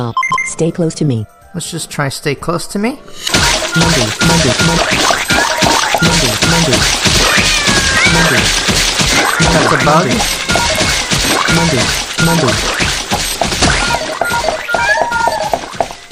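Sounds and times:
speech: 0.0 - 5.4, 6.0 - 7.2, 8.1 - 8.8, 9.4 - 13.4
video game thumps and crashing effects: 3.3 - 16.0
video game cat meowing: 7.0 - 8.6, 9.2 - 11.9, 13.7 - 15.8.

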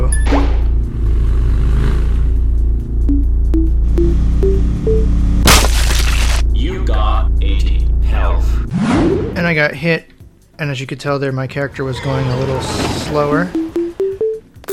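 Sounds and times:
low hum: 0.0 - 8.7
video game bomb beeps rising in pitch: 3.0 - 5.3, 13.3 - 14.7
speech: 9.6 - 13.6.

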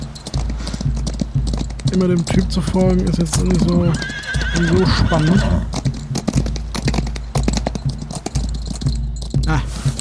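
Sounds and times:
video game horse galloping hoofbeats: 0.0 - 9.9
speech: 2.0 - 5.8
video game horse neighing: 3.4 - 5.9.

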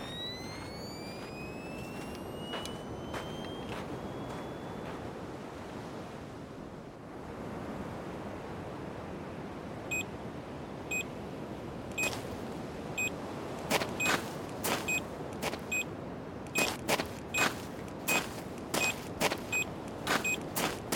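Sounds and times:
electronic metal detector tone rising in pitch: 0.0 - 4.9, 16.5 - 20.9
ocean surf roaring: 0.0 - 20.9
wind: 0.0 - 20.9.

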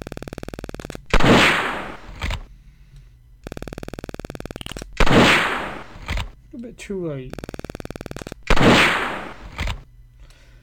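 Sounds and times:
ticking clicks in a video game target-shooting round: 0.0 - 10.4
video game gunfire blasts at a 5-gallon water bottle: 1.1 - 2.3, 5.0 - 6.3, 8.4 - 9.7
speech: 6.6 - 7.5.

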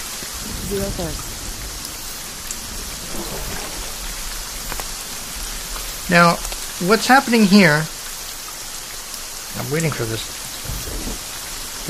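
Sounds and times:
steady dense rainfall pattering on a surface: 0.0 - 11.8
speech: 0.2 - 1.3, 3.2 - 3.9, 6.1 - 7.9, 9.6 - 10.4
faint low rumble: 0.3 - 7.3.

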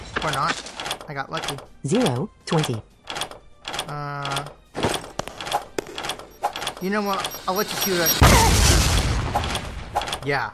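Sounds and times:
speech: 0.2 - 2.9, 3.9 - 4.6, 6.8 - 8.6, 10.2 - 10.5
missile explosion hitting a player in a video game: 8.2 - 9.9.

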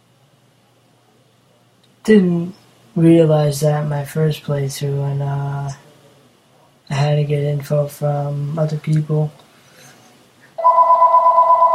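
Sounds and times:
speech: 2.0 - 5.8, 6.9 - 9.4
telephone ringing with an electronic tone: 10.6 - 11.7.

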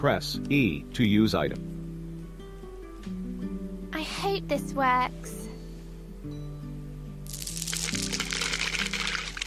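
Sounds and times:
speech: 0.0 - 1.7, 4.1 - 5.4
water pouring into a transparent tube: 7.3 - 9.4.

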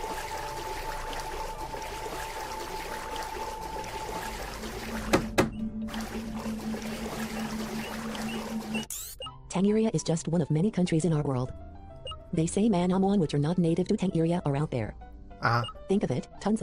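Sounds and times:
water splashing and sloshing from someone swimming: 0.0 - 9.0
speech: 9.6 - 11.7, 12.3 - 16.6.

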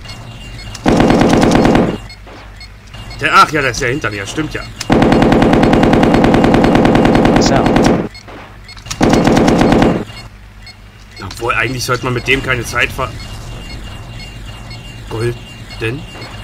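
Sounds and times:
machine gun fire in a video game: 0.8 - 2.0, 4.9 - 10.1
speech: 3.2 - 4.9, 7.5 - 7.8, 11.4 - 13.4, 15.1 - 16.4.

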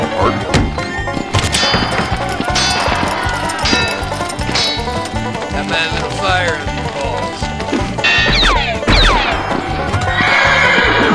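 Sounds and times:
general commotion: 0.2 - 11.1
horse hooves clip-clopping: 1.0 - 8.9, 9.5 - 11.1
horse whinnying: 9.9 - 11.1.

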